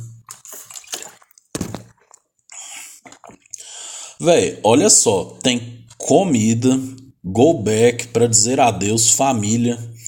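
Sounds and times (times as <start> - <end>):
water splash: 0.0 - 2.2, 3.0 - 3.6
water sloshing in a container: 0.0 - 3.6
person drinking with short wet gulps: 0.0 - 3.9
speech: 4.2 - 10.0.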